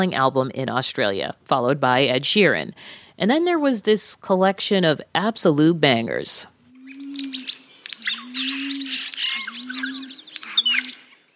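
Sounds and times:
speech: 0.0 - 6.5
long low bird cooing notes: 6.7 - 7.5, 8.2 - 10.9
chorus of Australian bird chirps, tweets and whistled trills: 6.7 - 11.3.

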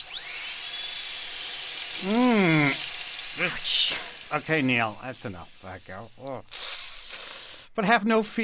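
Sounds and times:
dental drill whining at a high pitch: 0.0 - 7.8
person groaning or murmuring: 2.0 - 2.8
speech: 2.0 - 2.8, 3.4 - 6.7, 7.8 - 8.4.

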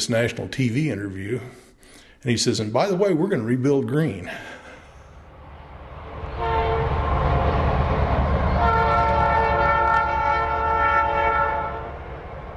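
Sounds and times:
speech: 0.0 - 1.6, 2.2 - 4.6
freight train rumbling past on the prairie line at Greensburg: 4.9 - 12.5
freight train horn blaring a long sustained chord: 6.3 - 12.5.

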